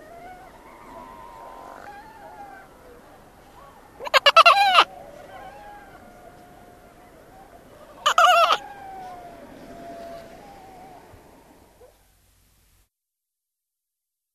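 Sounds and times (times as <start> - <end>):
Antarctic fur seal calls: 0.0 - 11.2.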